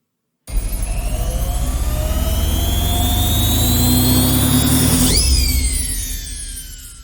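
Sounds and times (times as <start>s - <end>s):
washing machine spinning socks: 0.5s - 5.9s.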